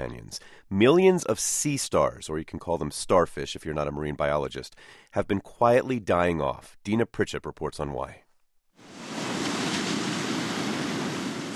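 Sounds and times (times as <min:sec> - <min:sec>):
speech: 0:00.0 - 0:08.2
ocean waves crashing at a rocky bay on the Oregon coast: 0:08.8 - 0:11.5.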